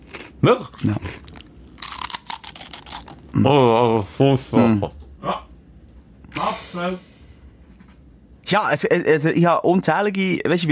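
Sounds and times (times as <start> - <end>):
crunchy rusk being chewed: 0.0 - 3.2
speech: 0.4 - 1.2, 3.3 - 5.4, 6.8 - 7.1, 8.5 - 10.7.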